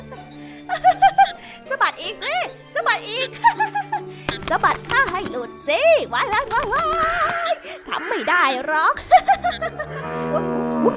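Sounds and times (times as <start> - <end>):
laughter: 0.7 - 1.4, 3.3 - 4.1, 6.6 - 10.9
speech: 4.5 - 10.9
angry old ox bellowing moo: 9.5 - 10.9.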